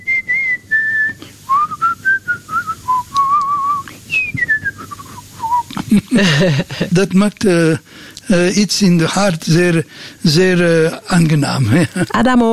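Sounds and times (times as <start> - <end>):
person whistling a tune on the street: 0.0 - 5.8
faint low hum: 0.0 - 12.5
breaths: 1.2 - 1.5, 4.8 - 5.6, 7.8 - 8.2, 9.9 - 10.2
laughter: 5.5 - 7.8, 10.3 - 12.4
speech: 6.2 - 12.5.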